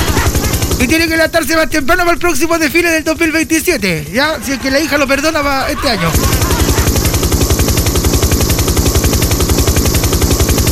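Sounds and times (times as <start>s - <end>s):
laughter: 0.0s - 0.9s, 4.0s - 7.4s
helicopter rotor chopping: 0.0s - 10.7s
speech: 0.8s - 6.5s.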